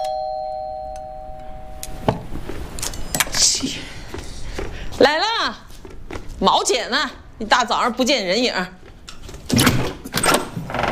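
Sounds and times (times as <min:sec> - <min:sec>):
chime: 0:00.0 - 0:01.8
speech: 0:05.0 - 0:05.6, 0:06.4 - 0:08.8
door rattling open with sharp knocks: 0:09.4 - 0:10.9.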